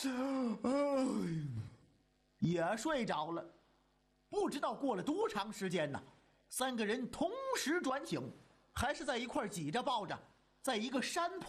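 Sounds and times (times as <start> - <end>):
speech: 0.0 - 1.7, 2.4 - 3.6, 4.3 - 11.4
storyteller imitating a drawn-out yawn: 0.0 - 1.8.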